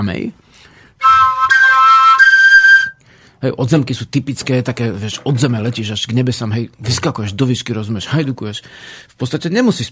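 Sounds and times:
speech: 0:00.0 - 0:01.3, 0:03.4 - 0:09.9
folk whistle flute playing a short bright breathy phrase: 0:01.0 - 0:03.0.

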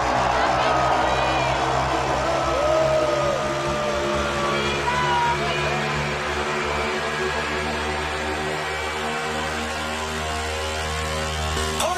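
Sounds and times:
huge festival crowd screaming and cheering: 0:00.0 - 0:11.9.

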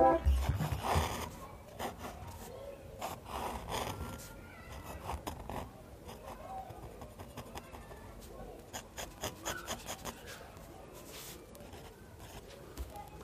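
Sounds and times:
pen nib scratching on paper while drawing: 0:00.2 - 0:07.9, 0:08.6 - 0:10.4.

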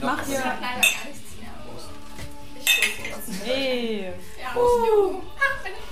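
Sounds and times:
faint room murmur: 0:00.0 - 0:05.9
glass or ceramic mugs of mulled wine clinking in a toast: 0:00.8 - 0:01.1, 0:02.6 - 0:03.3.

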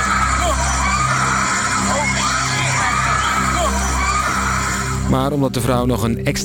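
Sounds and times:
woman screaming on a bungee catapult fairground ride in Amsterdam: 0:00.0 - 0:05.0
loud constant crowd noise: 0:00.0 - 0:05.2
speech: 0:05.1 - 0:06.4.

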